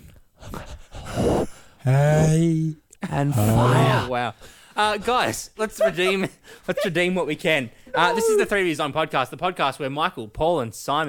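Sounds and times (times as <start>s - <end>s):
heavy breathing into a microphone: 0.0s - 1.9s, 3.4s - 4.8s, 6.0s - 6.9s
speech: 1.8s - 11.0s
laughter: 5.6s - 8.7s.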